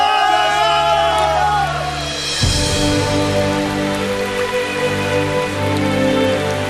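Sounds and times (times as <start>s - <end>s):
rain falling in a steady hiss: 0.0s - 6.6s.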